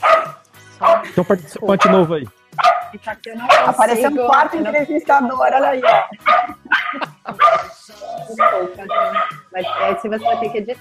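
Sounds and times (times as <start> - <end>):
small dog yapping excitedly: 0.0 - 1.0, 1.8 - 2.9, 3.5 - 3.9, 5.8 - 7.8, 8.4 - 10.6
laughter: 0.8 - 2.0, 5.7 - 8.8
speech: 1.2 - 6.6, 8.3 - 10.7.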